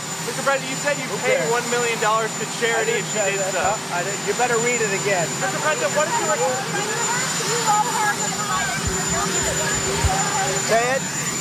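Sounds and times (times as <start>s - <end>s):
helicopter roaring overhead at an outdoor press gathering: 0.0s - 11.3s
speech: 0.3s - 11.1s.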